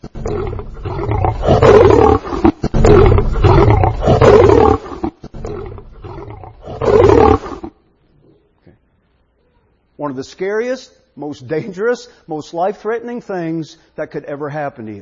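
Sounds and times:
male African lion growling and roaring: 0.0 - 7.7
speech: 10.1 - 15.0.

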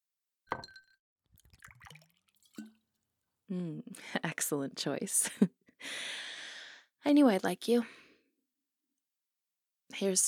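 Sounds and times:
glass clinking: 0.5 - 0.9
liquid pouring into a glass: 1.4 - 2.9
speech: 3.5 - 6.2, 7.0 - 8.0, 10.0 - 10.2.

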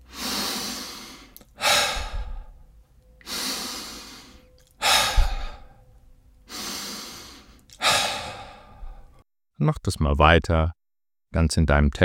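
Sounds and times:
deep connected breathing in through nose, out through mouth: 0.0 - 9.2
speech: 9.6 - 12.0.

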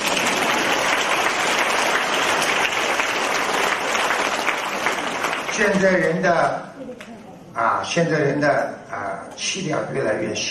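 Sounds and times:
large audience applauding: 0.0 - 6.2
speech: 5.6 - 10.4.

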